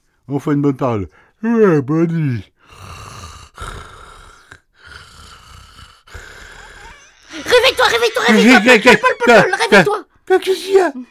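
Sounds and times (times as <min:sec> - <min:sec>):
speech: 0:00.3 - 0:03.0, 0:07.9 - 0:11.1
baby crying: 0:06.8 - 0:09.0
laughter: 0:07.0 - 0:10.0.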